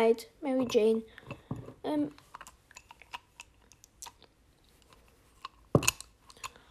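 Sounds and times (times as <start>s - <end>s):
speech: 0.0s - 2.2s
person chewing wetly and noisily at a meal: 2.4s - 5.0s.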